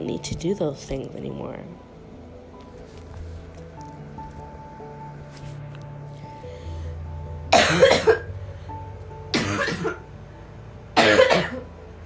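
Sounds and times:
speech: 0.0s - 1.9s
harsh coughs: 7.5s - 8.3s, 9.3s - 10.0s, 11.0s - 11.6s.

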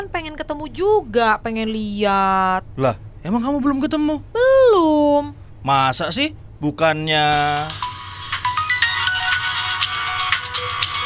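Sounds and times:
speech: 0.2s - 7.9s
phone ringtone for an incoming call: 7.7s - 11.0s.

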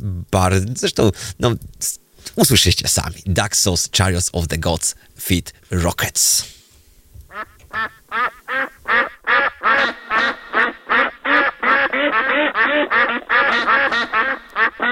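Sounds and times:
speech: 0.0s - 6.6s
duck quacking: 7.3s - 14.9s.

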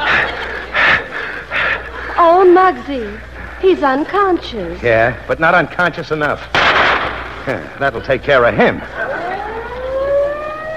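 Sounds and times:
laughter: 0.0s - 4.2s, 7.3s - 10.0s
speech: 2.2s - 9.1s
police siren wailing: 8.9s - 10.7s.

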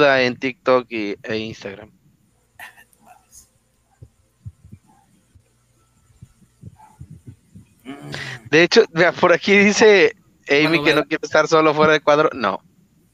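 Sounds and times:
speech: 0.0s - 2.0s, 8.0s - 12.7s
low thumping rumble: 4.0s - 5.5s, 6.2s - 8.5s
dogs barking: 4.8s - 5.2s, 6.7s - 7.3s.

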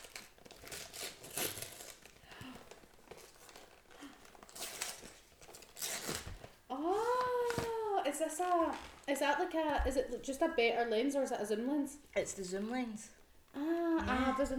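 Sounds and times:
wrapping paper crinkling and tearing as a gift is opened: 0.0s - 9.1s
speech: 8.3s - 14.5s.

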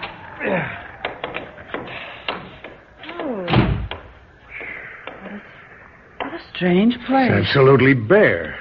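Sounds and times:
door creaking: 0.0s - 6.5s
heavy bang of a door shoved open: 1.0s - 4.2s
dull thumps and knocks on a door in freezing cold weather: 1.0s - 5.3s
speech: 6.6s - 8.5s.

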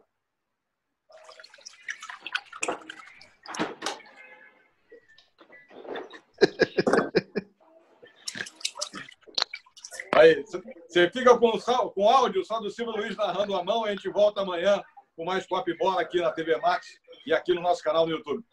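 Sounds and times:
tap water running and splashing: 1.1s - 4.2s, 8.1s - 10.4s
person laughing: 6.4s - 7.5s
speech: 10.2s - 18.5s.

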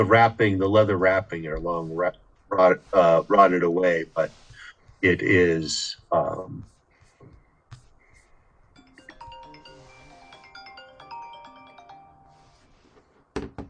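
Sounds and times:
speech: 0.0s - 4.4s, 5.0s - 6.7s
mobile phone ringing with a bright melodic ringtone: 8.8s - 12.9s.

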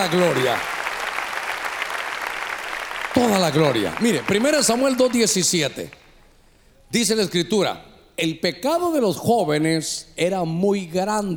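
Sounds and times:
speech: 0.0s - 0.8s, 3.1s - 6.0s, 6.9s - 11.3s
audience clapping loudly: 0.0s - 6.1s.

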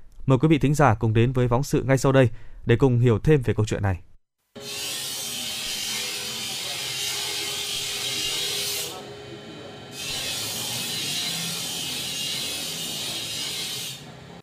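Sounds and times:
speech: 0.3s - 4.8s
blacksmith forge rasping grinding scrapes on metal in a smithy: 4.6s - 9.1s, 9.9s - 14.1s.

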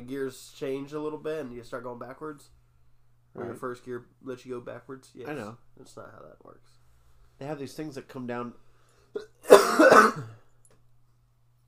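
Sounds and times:
speech: 0.0s - 2.6s, 3.4s - 6.8s, 7.4s - 8.6s, 9.2s - 10.4s
person coughing harshly and raspily: 9.2s - 10.4s.

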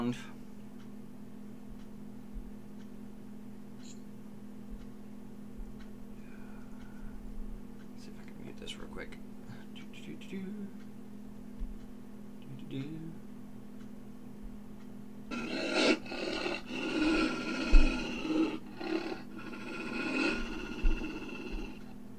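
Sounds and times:
speech: 0.0s - 0.4s, 10.3s - 10.8s
low hum: 0.0s - 22.1s
wolves growling with harsh rumbling snarls: 15.3s - 21.9s.

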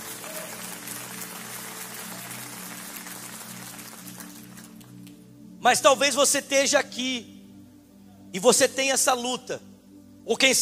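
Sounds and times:
audience applauding in a large room: 0.0s - 5.1s
speech: 5.6s - 7.3s, 8.3s - 9.7s, 10.3s - 10.6s.

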